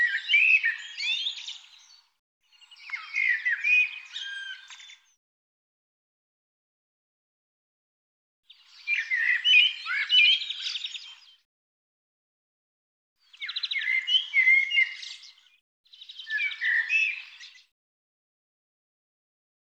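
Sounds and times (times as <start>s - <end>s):
bird calls: 0.0s - 5.1s, 8.5s - 11.3s, 13.3s - 17.7s.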